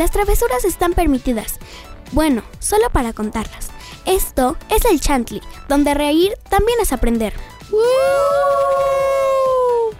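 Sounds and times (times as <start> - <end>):
speech: 0.0 - 9.1
several people screaming together: 7.7 - 9.9.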